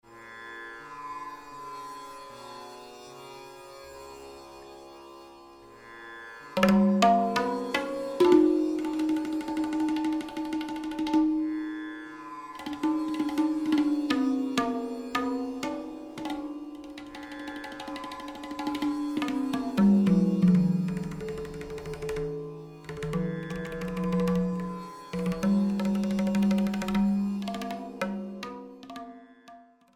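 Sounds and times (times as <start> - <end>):
tabla tarang: 6.5 - 29.9.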